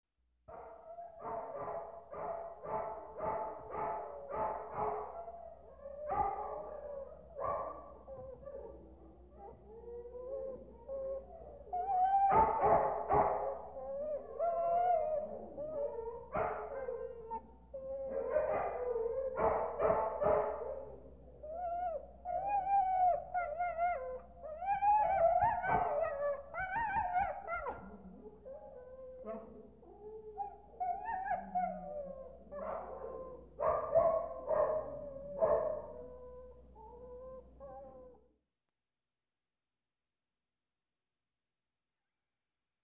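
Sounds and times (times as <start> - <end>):
distant dogs barking at kennels: 0.5 - 5.3, 6.0 - 8.0, 12.3 - 13.8, 18.1 - 21.0, 31.3 - 36.0
distant dogs whining at kennels: 0.6 - 38.3.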